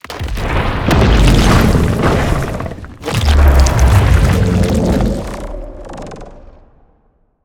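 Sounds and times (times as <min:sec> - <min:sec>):
Warden creature burrowing out: 0:01.2 - 0:06.2.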